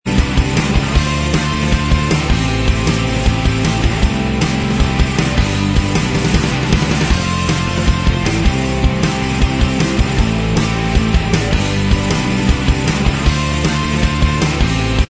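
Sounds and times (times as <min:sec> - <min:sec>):
instrumental music: 0:00.1 - 0:15.0.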